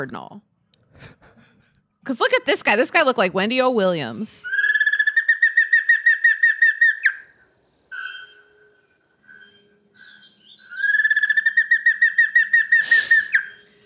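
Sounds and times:
speech: 0:00.0 - 0:04.6
giant antshrike calling: 0:04.4 - 0:13.8.

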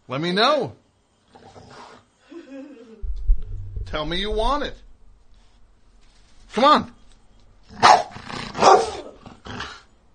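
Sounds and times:
speech: 0:00.1 - 0:00.8, 0:03.9 - 0:04.8, 0:06.6 - 0:07.0, 0:07.7 - 0:07.9
dog barking: 0:07.8 - 0:09.2.

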